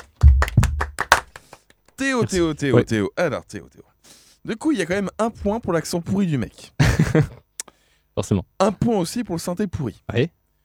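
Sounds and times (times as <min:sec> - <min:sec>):
hand clapping: 0:00.0 - 0:02.0
speech: 0:02.0 - 0:07.4, 0:08.2 - 0:10.4
laughter: 0:06.8 - 0:07.4.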